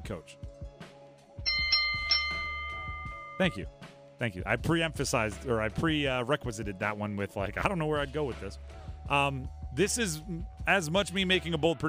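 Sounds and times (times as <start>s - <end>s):
speech: 0.1s - 0.4s, 3.4s - 11.8s
bell sound effect with bright metallic strikes: 1.5s - 3.6s.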